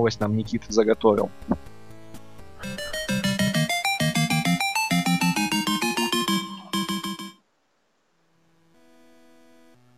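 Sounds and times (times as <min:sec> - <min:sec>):
speech: 0:00.0 - 0:01.6
upbeat synth podcast jingle: 0:02.6 - 0:07.4.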